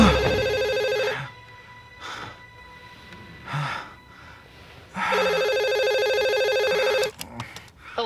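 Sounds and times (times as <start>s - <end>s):
telephone ringing: 0.1s - 1.3s, 5.1s - 7.1s.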